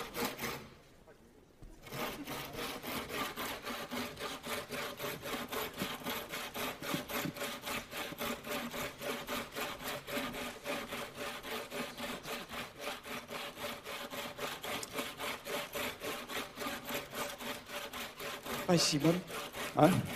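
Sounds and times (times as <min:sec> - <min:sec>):
hand saw cutting through wood on a stage: 0:00.0 - 0:00.9, 0:01.8 - 0:20.1
speech: 0:18.7 - 0:20.1.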